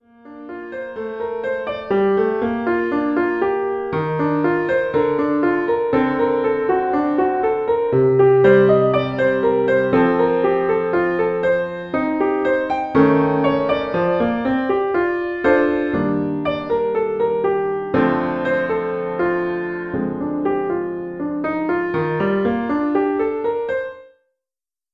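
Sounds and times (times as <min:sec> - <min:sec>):
intermediate piano solo: 0:00.0 - 0:24.2.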